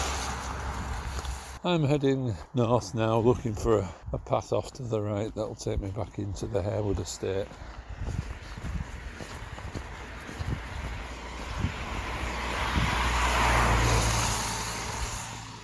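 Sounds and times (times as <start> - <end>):
car passing on an outdoor country lane: 0.0 - 1.6, 6.4 - 15.6
speech: 1.6 - 8.3
wind buffeting the microphone: 3.3 - 13.3.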